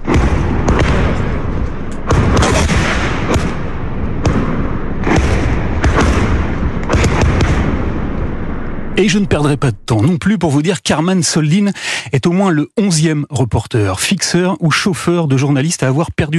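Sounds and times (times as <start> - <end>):
bursts of battlefield gunfire: 0.0 - 8.1
sharp battlefield blasts: 0.0 - 9.9
constant heavy battlefield roar: 0.0 - 10.0
speech: 9.0 - 16.3.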